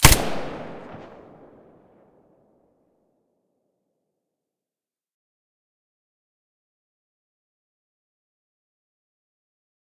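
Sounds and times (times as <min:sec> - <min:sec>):
weapons firing with silencer: 0:00.0 - 0:01.7.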